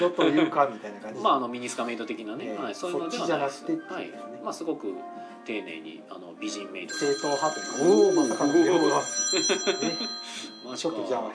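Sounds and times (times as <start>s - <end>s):
laughter: 0.0s - 0.6s, 9.1s - 10.3s
speech: 0.0s - 11.3s
telephone ringing with a bright electronic trill: 6.9s - 11.3s.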